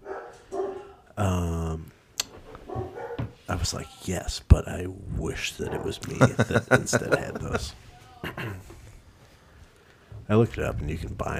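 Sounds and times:
dogs barking at door knock: 0.0 - 1.1, 2.5 - 3.4, 5.6 - 7.6
speech: 1.2 - 1.9, 3.6 - 8.7, 10.3 - 11.3
knocking on a door: 2.8 - 3.4
laughter: 5.8 - 8.7.

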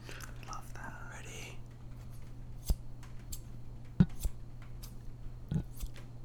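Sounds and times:
soft whispering: 0.0 - 1.7
faint steady hum: 0.0 - 6.2
gold-plated right-handed scissors with orange handle snipping in the air: 2.6 - 6.0.

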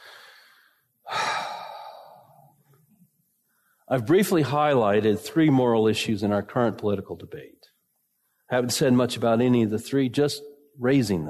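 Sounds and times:
breathy exhale like a sigh: 0.0 - 2.5
deep breath: 0.0 - 2.8
speech: 3.9 - 7.6, 8.5 - 11.2.

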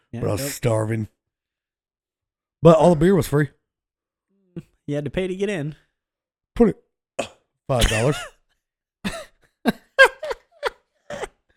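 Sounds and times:
speech: 0.1 - 1.2, 2.6 - 3.6, 4.6 - 5.8, 6.6 - 8.4
hiccups: 7.2 - 8.3
small coughs: 7.2 - 8.5, 9.1 - 9.4.

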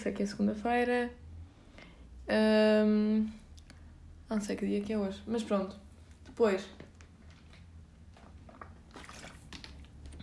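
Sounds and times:
speech: 0.0 - 1.2, 2.3 - 3.4, 4.3 - 5.8, 6.4 - 6.8
low steady hum: 0.0 - 10.2
person sipping and swallowing water: 7.2 - 10.2.

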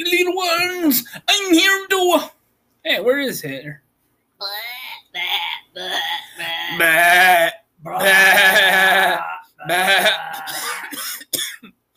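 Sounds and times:
speech: 0.0 - 4.6, 5.2 - 8.6
sheep coughing: 6.2 - 11.6.

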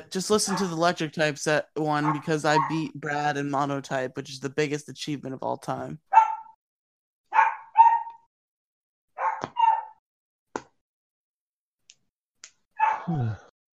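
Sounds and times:
speech: 0.1 - 6.1, 13.1 - 13.4
aging dog barking: 2.0 - 2.8, 6.1 - 6.6, 7.3 - 8.3, 9.2 - 10.0, 12.8 - 13.1.

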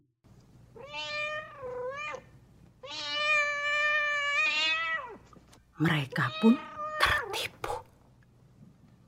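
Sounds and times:
cat meowing: 0.8 - 5.2, 6.2 - 7.4
speech: 5.8 - 6.7, 7.3 - 7.6.

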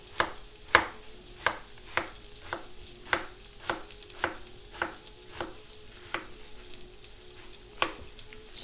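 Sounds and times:
faint steady hiss and hum: 0.0 - 8.6
large knife slicing zucchini on a cutting board: 0.2 - 6.4.

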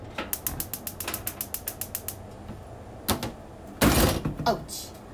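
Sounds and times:
gas stove burner igniter clicking: 0.3 - 2.4
speech: 4.5 - 4.9.

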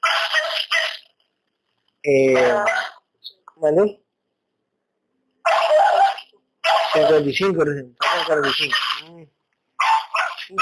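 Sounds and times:
dog barking: 0.0 - 1.0, 2.4 - 3.0, 5.4 - 7.3, 9.8 - 10.5
speech: 2.0 - 2.8, 3.6 - 4.0, 7.0 - 9.4.

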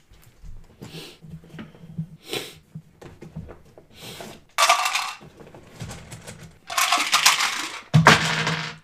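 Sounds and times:
dice rolling on a hard tabletop in a tabletop role-playing game: 4.6 - 8.8.

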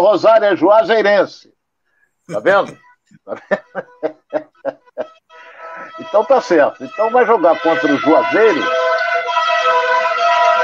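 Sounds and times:
speech: 0.0 - 1.5, 2.3 - 4.8, 6.0 - 8.8
laughter: 2.3 - 6.1
fire truck siren passing by: 5.0 - 10.6.

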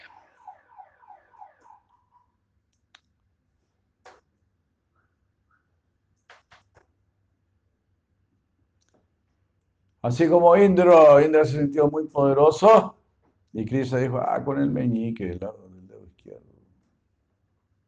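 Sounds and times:
alarm beeping: 0.0 - 0.6
scattered sharp clicks and snaps: 2.7 - 3.2, 6.1 - 7.0, 8.8 - 10.0
speech: 10.0 - 15.6.

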